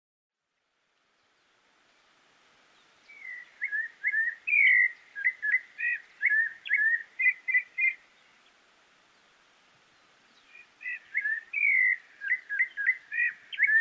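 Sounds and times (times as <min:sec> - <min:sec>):
Rufous-bellied thrush whistled song: 0:02.8 - 0:08.4, 0:10.0 - 0:13.7.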